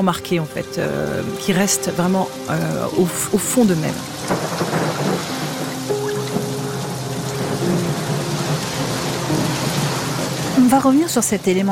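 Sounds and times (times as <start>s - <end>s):
speech: 0.0s - 5.3s, 10.7s - 11.7s
heavy downpour in a storm recreation: 0.0s - 11.7s
deep rumbles of thunder: 2.5s - 11.7s.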